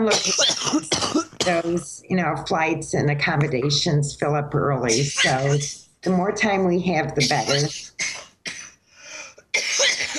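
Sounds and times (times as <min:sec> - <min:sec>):
speech: 0:00.0 - 0:08.2
harsh raspy coughing: 0:00.1 - 0:01.8, 0:07.2 - 0:10.1.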